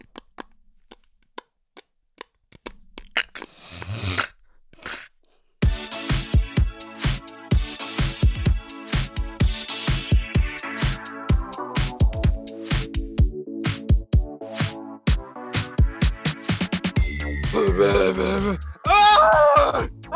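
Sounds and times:
teeth gnawing on an award trophy: 0.0 - 5.6
loud busy music with heavy beats: 5.6 - 20.1.

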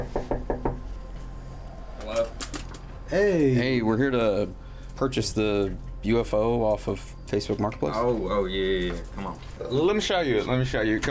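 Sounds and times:
knocking on a door: 0.0 - 0.9
speech: 3.1 - 11.0.

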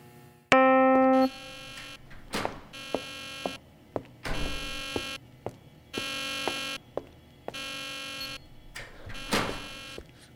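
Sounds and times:
steady electronic tone: 0.5 - 2.1, 2.7 - 3.6, 4.3 - 5.2, 5.9 - 10.0
alarm blaring in harsh buzzing bursts: 0.6 - 3.6, 4.3 - 5.2, 5.9 - 10.0.

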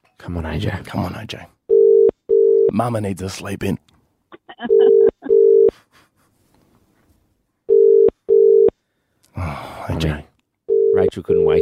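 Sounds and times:
speech: 0.2 - 1.6, 2.7 - 3.9, 9.4 - 10.3, 11.1 - 11.5
outgoing phone call ringback tones: 1.7 - 2.7, 4.7 - 5.7, 7.7 - 8.7, 10.7 - 11.5.

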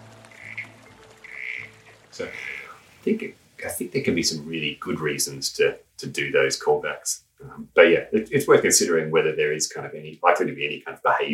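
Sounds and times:
small corroboree frog buzzy calls: 0.3 - 3.0
speech: 2.2 - 11.3.

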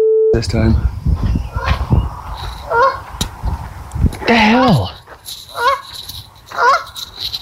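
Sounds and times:
speech: 0.4 - 1.7, 4.3 - 5.4
geese honking: 1.5 - 1.9, 2.6 - 3.2, 5.5 - 7.1.

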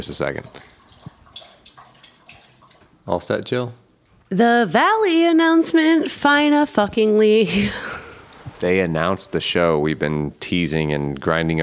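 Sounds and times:
speech: 0.0 - 0.8, 3.1 - 7.9, 8.6 - 11.6
dog lapping water from a bowl: 0.4 - 3.0.

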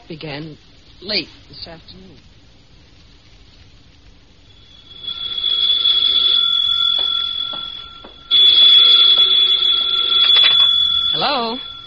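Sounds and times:
speech: 0.1 - 2.3, 11.2 - 11.7
telephone ringing with a shrill bell-like trill: 4.5 - 11.8.

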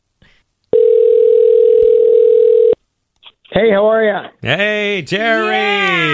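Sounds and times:
telephone dial tone: 0.7 - 2.8
speech: 3.6 - 6.1.

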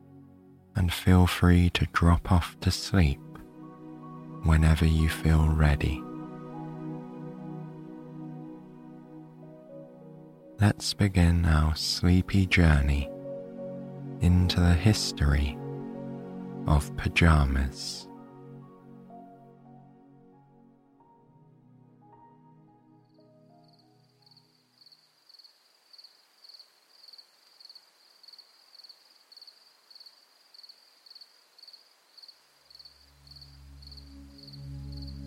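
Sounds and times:
soft musical passage: 0.0 - 24.8, 33.0 - 35.2
speech: 0.8 - 3.2, 4.4 - 6.1, 10.6 - 13.1, 14.2 - 15.6, 16.7 - 18.1
crickets chirping at night: 23.0 - 35.2.

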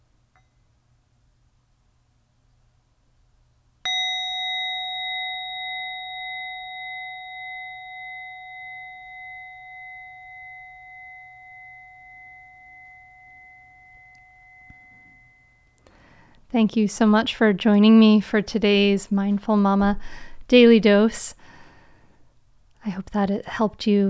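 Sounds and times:
meditation bell struck at the close of a meditation: 3.9 - 15.9
speech: 16.5 - 21.5, 22.8 - 24.0.

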